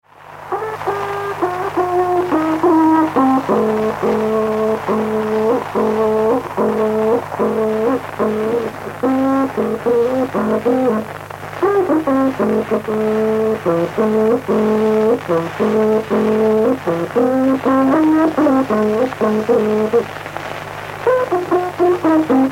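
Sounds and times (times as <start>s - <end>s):
Mapuche trutruka playing: 0.5s - 22.5s.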